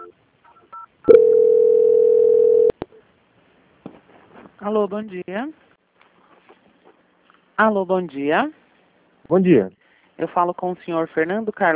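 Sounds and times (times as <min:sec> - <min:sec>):
telephone call-transfer tone on a bank's customer line: 0:00.0 - 0:02.8
speech: 0:04.6 - 0:05.6, 0:07.6 - 0:08.6, 0:09.3 - 0:11.7.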